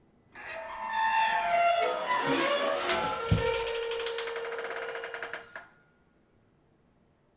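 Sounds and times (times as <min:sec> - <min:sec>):
metal creaking: 0:00.4 - 0:05.6.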